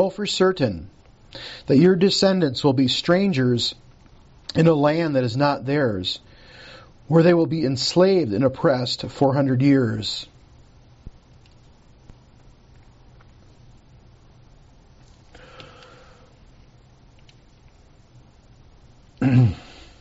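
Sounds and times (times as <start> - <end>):
speech: 0.0 - 3.8, 4.5 - 6.3, 7.1 - 10.3
quiet room hiss: 0.0 - 19.9
harsh throat clearing: 19.2 - 19.8.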